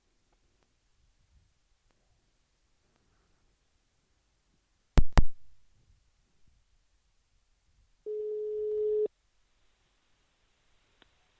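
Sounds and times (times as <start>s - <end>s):
steady electronic telephone ringback tone: 8.1s - 9.1s.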